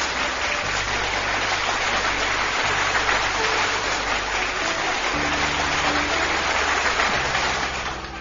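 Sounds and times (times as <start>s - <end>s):
crowd applause for a recited poem: 0.0s - 8.2s.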